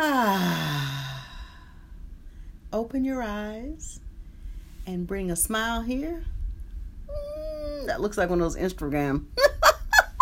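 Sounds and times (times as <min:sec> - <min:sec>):
deep breath out as a voiced sigh during a guided breathing exercise: 0:00.1 - 0:02.6
speech: 0:02.7 - 0:04.1, 0:04.8 - 0:06.4, 0:07.1 - 0:09.5.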